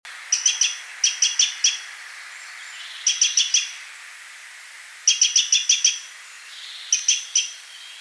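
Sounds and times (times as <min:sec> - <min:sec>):
Eurasian wren Troglodytes troglodytes giving sharp high ticking notes: 0:00.3 - 0:01.9, 0:02.5 - 0:03.8, 0:05.1 - 0:07.9.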